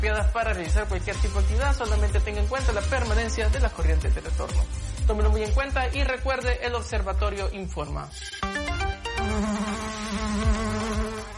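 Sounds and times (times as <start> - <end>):
speech: 0.0 - 10.2
bees buzzing: 9.0 - 11.3
low thumps: 9.2 - 11.3.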